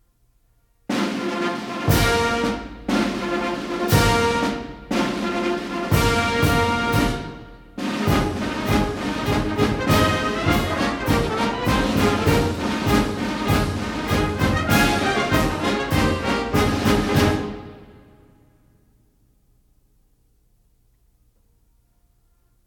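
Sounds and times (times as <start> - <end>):
military drum ruffles and brass flourishes: 0.8 - 18.4
military band playing a march for flag officers at a birthday ball: 0.9 - 18.1.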